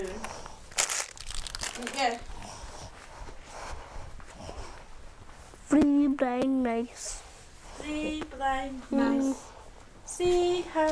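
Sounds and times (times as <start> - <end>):
paper crinkling and crumpling: 0.7 - 2.3
speech: 1.8 - 2.3, 5.7 - 7.2, 7.8 - 9.5, 10.2 - 10.8.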